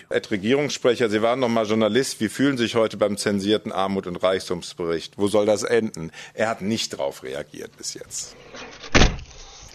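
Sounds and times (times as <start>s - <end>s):
speech: 0.0s - 9.1s
thump: 8.9s - 9.3s.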